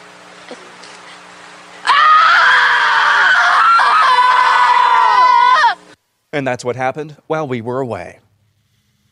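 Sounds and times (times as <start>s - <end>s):
faint hum: 0.0s - 9.0s
speech: 0.5s - 0.7s, 6.3s - 8.2s
woman screaming long high-pitched scream: 1.8s - 5.9s.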